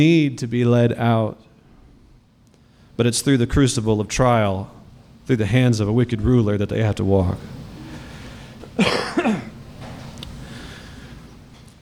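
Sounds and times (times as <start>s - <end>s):
speech: 0.0s - 1.5s, 3.0s - 7.6s
faint steady hum: 0.0s - 11.8s
person coughing: 8.6s - 9.6s.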